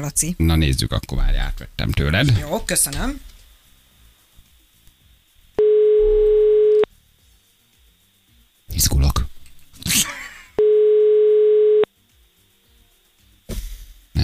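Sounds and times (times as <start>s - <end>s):
speech: 0.0s - 3.3s, 8.7s - 9.3s
telephone ringback tone on the line: 5.6s - 6.9s, 10.6s - 11.9s.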